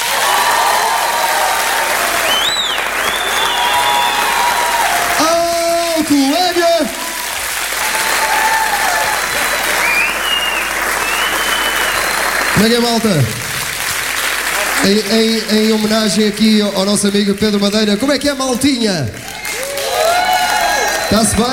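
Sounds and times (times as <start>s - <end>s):
crowd cheering at a live show: 0.0s - 17.5s, 19.2s - 21.5s
large audience applauding at a live show: 0.0s - 18.2s, 19.0s - 21.5s
whistles from crowd at a live show: 2.2s - 4.6s, 9.6s - 12.5s
speech: 12.6s - 13.4s, 14.8s - 19.3s, 21.1s - 21.5s.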